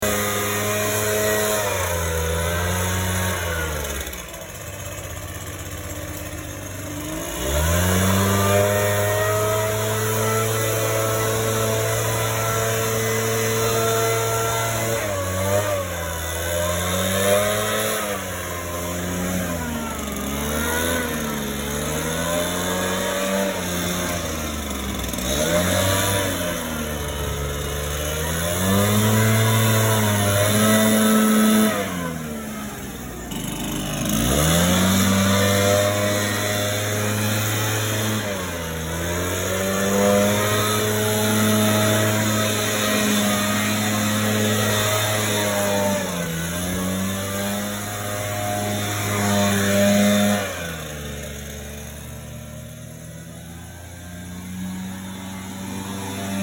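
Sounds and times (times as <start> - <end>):
leaf blower: 0.0 - 56.4.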